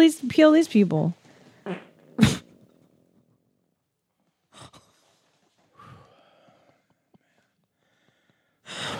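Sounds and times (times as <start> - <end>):
speech: 0.0 - 2.3
raspy fart-like blasts: 1.6 - 2.9.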